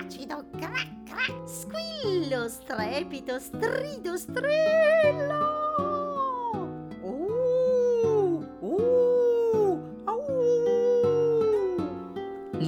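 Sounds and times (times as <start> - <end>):
speech: 0.1 - 6.0
human voice imitating a dingo howling: 5.3 - 11.8.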